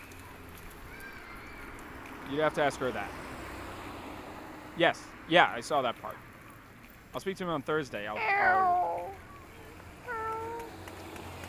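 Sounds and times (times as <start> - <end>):
speech: 2.3 - 3.3, 4.8 - 6.3, 7.1 - 8.9
cat meowing: 8.2 - 9.2, 10.1 - 10.7.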